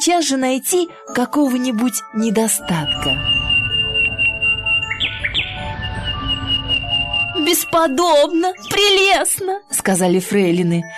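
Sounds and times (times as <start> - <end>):
speech: 0.0 - 3.4, 7.5 - 10.9
nightingale singing: 2.6 - 9.3.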